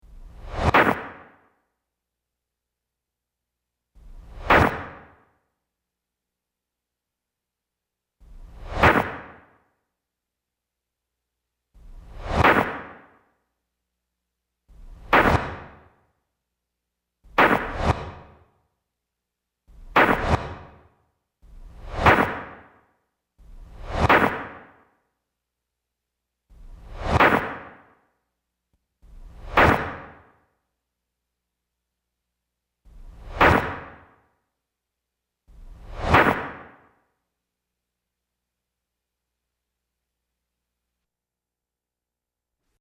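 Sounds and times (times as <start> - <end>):
Japanese arrow: 0.0 - 1.6, 4.0 - 5.4, 8.2 - 9.7, 11.8 - 13.3, 14.7 - 16.2, 17.2 - 18.6, 19.7 - 25.0, 26.5 - 28.1, 29.0 - 30.5, 32.9 - 34.3, 35.5 - 37.0.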